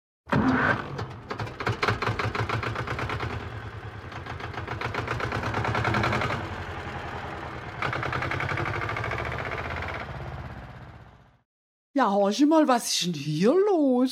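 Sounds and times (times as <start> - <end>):
diesel tractor engine chugging: 1.2 - 11.4
speech: 12.0 - 14.1.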